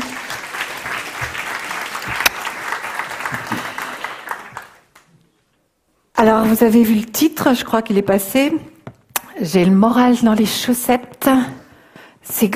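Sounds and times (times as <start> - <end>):
crowd applauding: 0.0 - 5.1
speech: 6.2 - 8.7, 9.4 - 11.6, 12.3 - 12.5.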